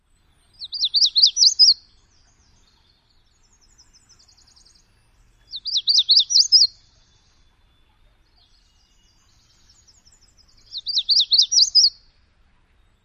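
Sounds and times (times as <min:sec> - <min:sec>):
Magnolia warbler singing: 0:00.0 - 0:13.0.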